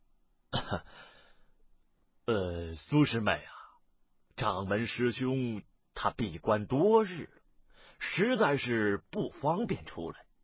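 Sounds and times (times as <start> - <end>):
sect elder coughing: 0.5 - 1.0
speech: 0.7 - 1.1, 2.3 - 3.5, 4.4 - 7.4, 8.0 - 10.2.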